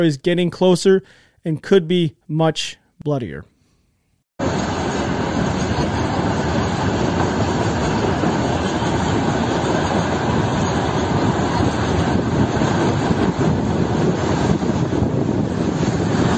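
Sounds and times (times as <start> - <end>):
speech: 0.0 - 3.5
freight train carrying rocket launchers rolling on rails: 4.4 - 16.3.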